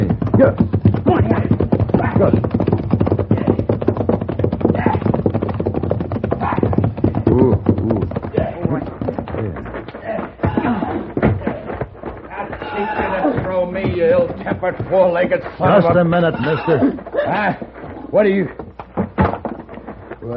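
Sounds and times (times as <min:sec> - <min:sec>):
horse hooves clip-clopping: 0:00.0 - 0:20.3
speech: 0:00.4 - 0:00.8, 0:02.2 - 0:02.5, 0:14.6 - 0:18.6.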